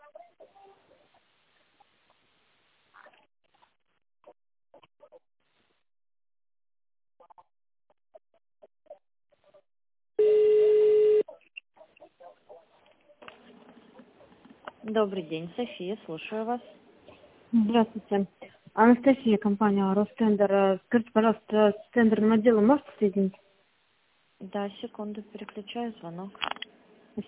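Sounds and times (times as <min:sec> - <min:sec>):
touch-tone beep dialing an extension number on a company phone line: 0:10.2 - 0:11.2
speech: 0:14.9 - 0:16.8, 0:17.5 - 0:23.4, 0:24.4 - 0:26.5.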